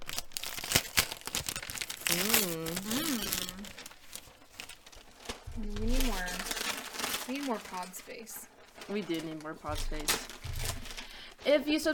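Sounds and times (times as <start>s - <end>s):
wrapping paper crinkling and ripping: 0.0s - 11.9s
person vocalizing: 2.2s - 3.7s
speech: 7.5s - 10.4s, 11.4s - 11.9s.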